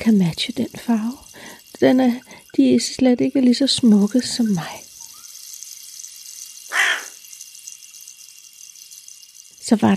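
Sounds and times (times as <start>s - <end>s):
speech: 0.0s - 4.8s, 9.7s - 9.9s
steady hiss: 0.0s - 9.9s
black crow cawing: 6.7s - 7.2s.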